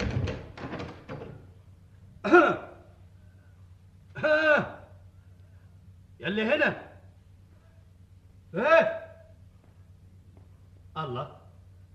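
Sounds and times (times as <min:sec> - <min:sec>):
door being opened with thunks and rattles: 0:00.0 - 0:01.5
speech: 0:02.2 - 0:02.7, 0:06.2 - 0:06.8, 0:08.5 - 0:09.0, 0:11.0 - 0:11.4.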